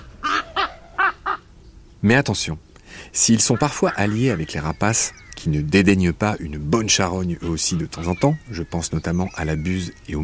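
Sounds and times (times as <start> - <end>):
crow giving harsh raspy caws: 0.0 - 1.5, 3.4 - 5.4, 7.4 - 10.2
speech: 2.0 - 10.2.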